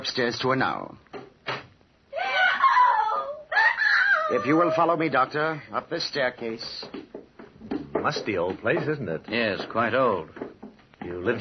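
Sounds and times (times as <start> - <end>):
speech: 0.0 - 1.0, 4.3 - 7.0, 8.0 - 10.4, 11.0 - 11.3
woman screaming: 2.1 - 5.0.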